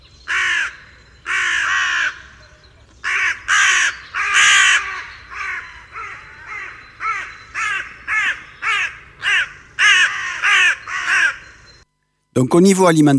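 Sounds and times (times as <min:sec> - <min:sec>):
carrion crow cawing harshly: 0:00.3 - 0:11.7
speech: 0:12.4 - 0:13.1.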